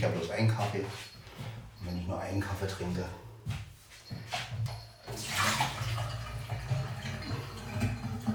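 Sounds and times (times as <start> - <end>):
speech: 0.0 - 3.6
water being tipped out while making coffee: 5.1 - 8.3.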